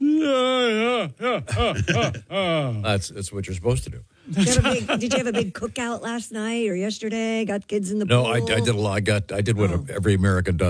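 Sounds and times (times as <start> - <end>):
man letting out a loud drawn-out vocalized yawn: 0.0 - 2.8
laughter: 1.2 - 2.6, 4.3 - 5.8
speech: 1.3 - 10.6.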